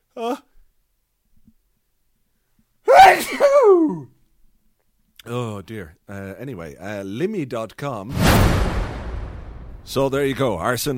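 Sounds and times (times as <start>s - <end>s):
speech: 0.2s - 0.4s, 5.7s - 8.8s, 9.8s - 10.9s
person sneezing: 2.9s - 4.0s.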